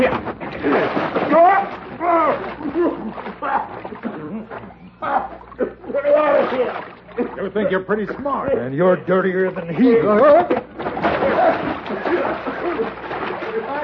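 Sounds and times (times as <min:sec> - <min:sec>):
water splashing and sloshing in a water trough at a ranch: 0:00.0 - 0:08.0, 0:09.8 - 0:13.8
excited people shouting and laughing: 0:01.3 - 0:07.4, 0:09.6 - 0:13.8
speech: 0:07.6 - 0:10.6.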